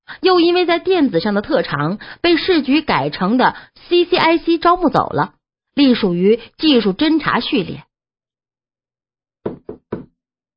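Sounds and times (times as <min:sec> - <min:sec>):
speech: 0:00.2 - 0:07.9
firm knocks on a door: 0:09.4 - 0:10.1.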